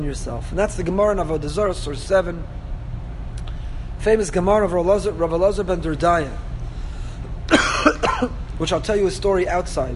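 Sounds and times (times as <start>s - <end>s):
speech: 0.0s - 2.6s, 4.0s - 6.4s, 8.2s - 9.9s
low hum: 0.0s - 9.9s
person coughing harshly: 7.5s - 8.4s
throat-clearing rasp: 7.5s - 8.4s.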